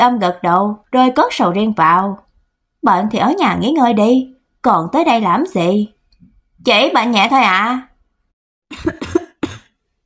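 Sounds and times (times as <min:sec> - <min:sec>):
speech: 0:00.0 - 0:02.2, 0:02.8 - 0:06.0, 0:06.6 - 0:07.9, 0:08.7 - 0:09.2
dry coughing: 0:08.7 - 0:09.8.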